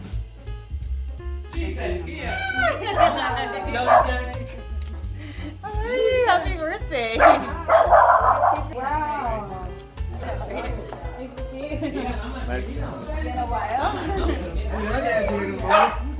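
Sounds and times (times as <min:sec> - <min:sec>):
low steady hum: 0:00.3 - 0:16.1
speech: 0:01.6 - 0:04.4, 0:05.9 - 0:09.2, 0:11.5 - 0:16.1
laughter: 0:01.8 - 0:04.6, 0:05.2 - 0:06.6, 0:07.2 - 0:08.6, 0:10.1 - 0:16.1
dog barking and yipping excitedly: 0:02.6 - 0:04.4, 0:07.2 - 0:08.7, 0:15.6 - 0:16.0.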